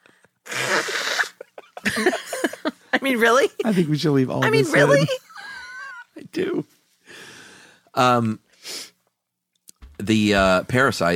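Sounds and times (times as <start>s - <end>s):
person blowing nose during an allergy attack: 0.4s - 1.4s, 8.6s - 9.0s
laughter: 1.3s - 6.1s
speech: 1.9s - 2.2s, 3.1s - 5.3s, 6.4s - 6.7s, 8.0s - 8.4s, 10.0s - 11.1s.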